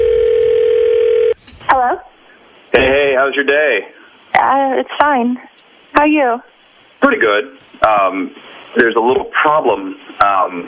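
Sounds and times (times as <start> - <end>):
person answering phone: 0.0 - 1.4
steady electronic telephone ring tone on the line: 0.0 - 1.4
speech: 3.3 - 10.6.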